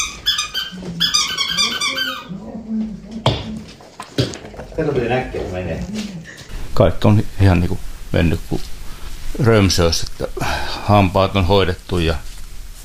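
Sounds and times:
new squeaky toy squeaking as a dog chews it: 0:00.0 - 0:02.3
speech: 0:04.8 - 0:06.2, 0:06.8 - 0:08.7, 0:09.4 - 0:12.3.

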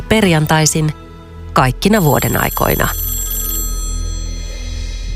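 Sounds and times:
speech: 0:00.1 - 0:01.0, 0:01.6 - 0:03.0
telephone bell ringing processed with echo and effects: 0:02.0 - 0:05.0.

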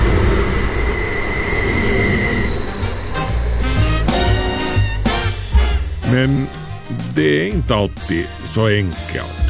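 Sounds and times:
thin metallic squeal of train wheels: 0:00.0 - 0:06.0
train rumbling along the rails: 0:00.0 - 0:07.0
speech: 0:06.2 - 0:09.4.

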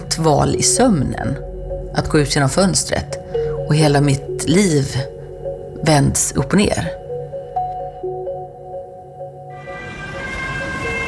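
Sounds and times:
speech: 0:00.2 - 0:05.1, 0:05.8 - 0:07.0
ambulance siren: 0:09.4 - 0:11.0.

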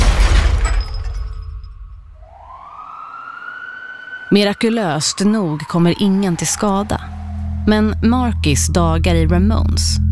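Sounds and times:
tinkling glass debris: 0:00.0 - 0:02.0
car crashing through shop window glass: 0:00.0 - 0:02.2
glass shattering with heavy low-end impact: 0:00.0 - 0:02.2
speech: 0:04.3 - 0:07.1, 0:07.7 - 0:10.0.

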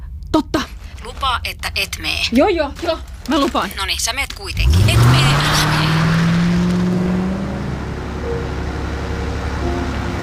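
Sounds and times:
car engine drone as it drives along: 0:00.0 - 0:10.2
road rumble: 0:00.0 - 0:10.2
speech: 0:00.3 - 0:00.6, 0:01.3 - 0:06.0.

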